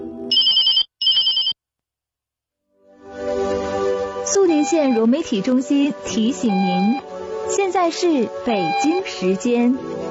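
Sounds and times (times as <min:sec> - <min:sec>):
electronic telephone ringtone: 0:00.3 - 0:01.5, 0:06.5 - 0:07.0, 0:08.6 - 0:09.0
speech: 0:04.3 - 0:10.0.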